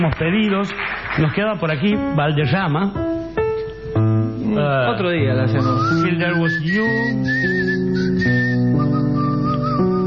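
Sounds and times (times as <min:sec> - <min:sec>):
speech: 0:00.0 - 0:03.1, 0:04.5 - 0:07.6
person whistling a tune with vibrato: 0:05.6 - 0:10.0.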